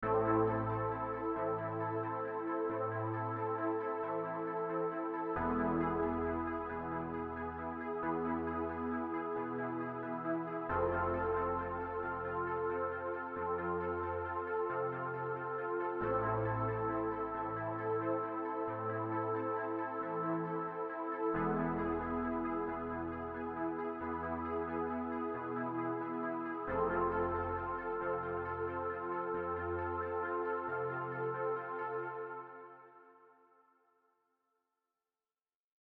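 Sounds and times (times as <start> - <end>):
synth playing Am E F chords: 0.0 - 32.9.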